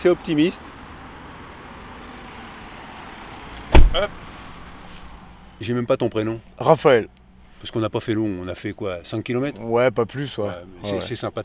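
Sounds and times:
speech: 0:00.0 - 0:00.8, 0:03.9 - 0:04.2, 0:05.6 - 0:11.4
cars passing on a road: 0:00.0 - 0:11.4.

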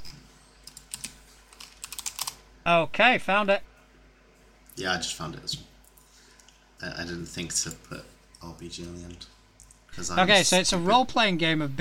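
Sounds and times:
keys clacking on a computer keyboard as someone types a search: 0:00.6 - 0:02.4
speech: 0:02.6 - 0:03.7, 0:04.8 - 0:05.7, 0:06.8 - 0:09.4, 0:10.0 - 0:11.8.

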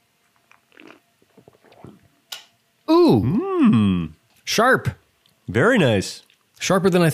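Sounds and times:
person slurping a frothy sour cocktail: 0:00.6 - 0:02.1
gulping swallow: 0:00.7 - 0:02.1
speech: 0:03.1 - 0:03.8, 0:04.5 - 0:07.1.

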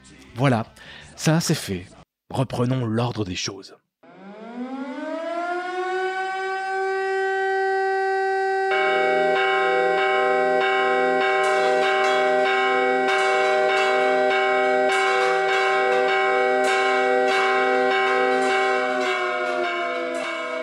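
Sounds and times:
speech: 0:00.4 - 0:03.8
wailing factory alarm siren: 0:04.0 - 0:20.6
church bells rung by priests clanging a tocsin alarm: 0:08.6 - 0:20.6.

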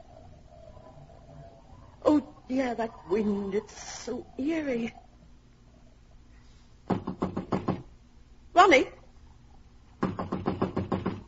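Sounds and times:
speech: 0:02.1 - 0:05.0
knocking on a locked wooden door: 0:06.9 - 0:07.9, 0:10.0 - 0:11.2.

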